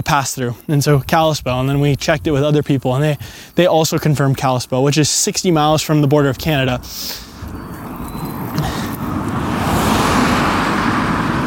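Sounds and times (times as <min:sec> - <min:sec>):
speech: 0:00.0 - 0:07.8, 0:08.6 - 0:08.9
cars passing on road: 0:05.4 - 0:11.4.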